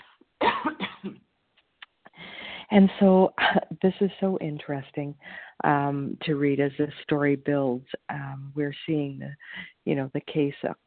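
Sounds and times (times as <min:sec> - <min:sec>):
person clearing throat: 0:00.4 - 0:01.2
speech: 0:02.7 - 0:10.8.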